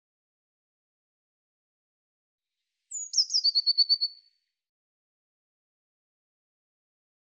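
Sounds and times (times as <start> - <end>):
Eurasian blue tit giving a descending whistle and trill: 2.9 - 4.3.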